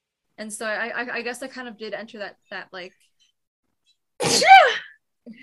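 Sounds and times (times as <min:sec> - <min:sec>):
speech: 0:00.4 - 0:03.1, 0:04.2 - 0:05.4
single loud sneeze: 0:04.2 - 0:04.9.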